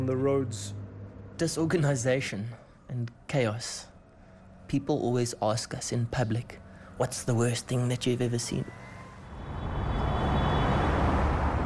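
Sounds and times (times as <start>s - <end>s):
speech: 0.0s - 0.8s, 1.4s - 3.9s, 4.7s - 8.8s
dense roar of traffic on a freeway ringing Johannesburg: 9.0s - 11.6s.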